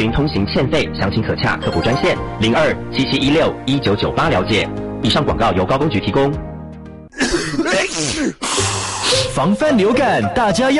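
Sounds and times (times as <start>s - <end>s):
speech: 0.0s - 6.5s, 9.4s - 10.7s
person sneezing: 7.2s - 9.2s.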